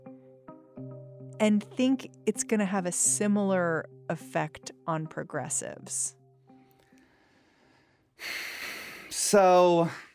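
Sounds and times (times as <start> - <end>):
speech: 1.4 - 6.2, 9.3 - 10.1
deep inhale: 6.5 - 9.2.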